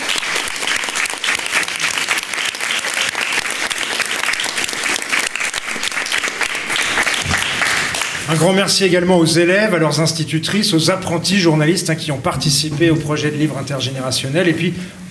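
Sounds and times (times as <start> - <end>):
audience applauding a library staff member at a project event in Isère France: 0.0 - 8.3
speech: 8.3 - 15.0.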